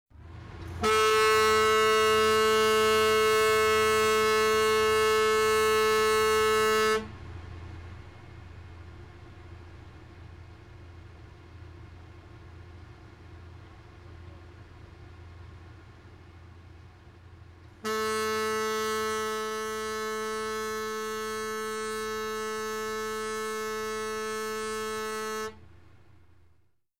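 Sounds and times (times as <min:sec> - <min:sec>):
boat: 0:00.1 - 0:26.6.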